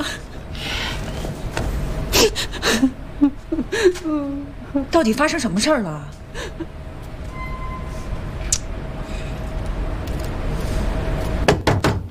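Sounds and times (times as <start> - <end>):
steady low hum: 0.0 - 11.5
speech: 2.2 - 6.7
sharp knocks on a door: 11.5 - 12.0.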